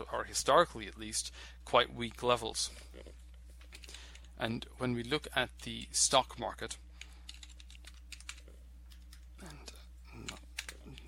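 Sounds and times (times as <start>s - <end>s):
speech: 0.1s - 3.2s, 4.4s - 6.8s
typing on a computer keyboard: 7.0s - 9.2s.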